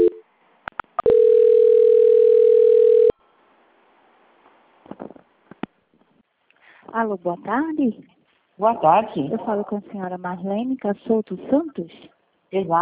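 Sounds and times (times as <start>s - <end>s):
steady mid-pitched telephone tone during a call transfer at a bank's customer line: 0.0s - 0.2s, 1.0s - 3.2s
speech: 7.0s - 12.8s.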